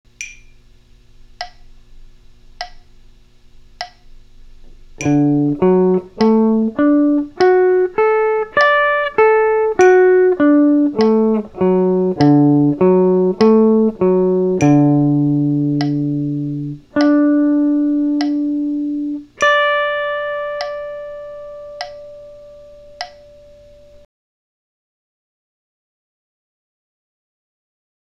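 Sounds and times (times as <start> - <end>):
guitar arpeggio in CAGED E form: 5.0 - 24.0.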